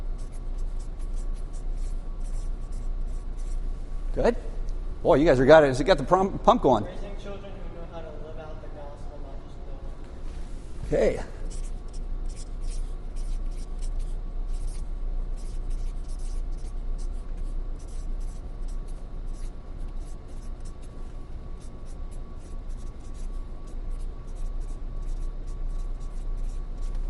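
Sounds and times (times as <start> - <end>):
handwriting strokes scratching: 0.0 - 3.7, 11.4 - 27.0
speech: 4.2 - 7.4, 10.9 - 11.3.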